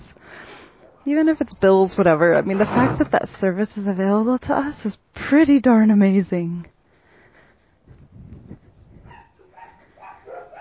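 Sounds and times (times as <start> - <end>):
speech: 1.0 - 6.7
dogs barking and yelping to greet their owner arriving home: 9.0 - 10.5.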